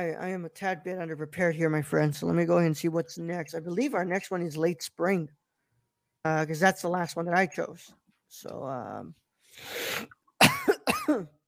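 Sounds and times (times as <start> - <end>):
speech: 0.0 - 5.4, 6.2 - 10.2, 11.1 - 11.4
person coughing harshly: 10.4 - 11.4.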